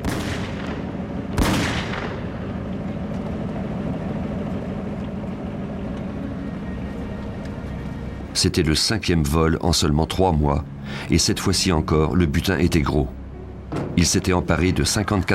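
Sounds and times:
gunshot fired by masked robbers at a security guard: 0.0 - 2.2
steady rumbling background: 0.0 - 15.3
speech: 8.4 - 15.3.

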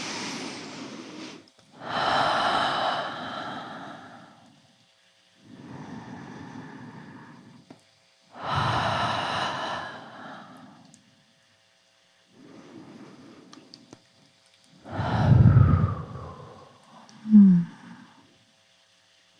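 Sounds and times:
slow deep breaths during a guided meditation: 0.0 - 4.6, 5.4 - 7.7, 8.3 - 11.1, 12.3 - 13.8, 14.8 - 18.4.

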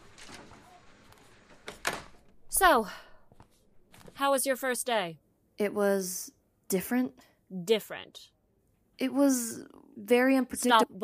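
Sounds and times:
office door being pushed shut: 0.0 - 2.4
speech: 2.6 - 3.1, 4.2 - 8.4, 9.0 - 11.0.

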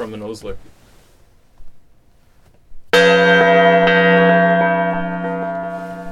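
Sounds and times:
speech: 0.0 - 0.8
gong being struck: 3.0 - 6.1.

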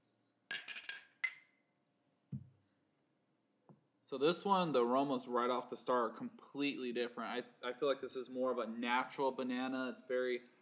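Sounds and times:
beer glasses clinking together in a toast: 0.5 - 1.6
speech: 4.1 - 10.6.

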